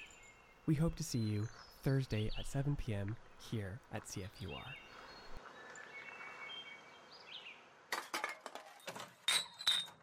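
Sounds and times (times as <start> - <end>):
speech: 0.7 - 5.0
empty glass bottles clinking together: 8.0 - 10.0.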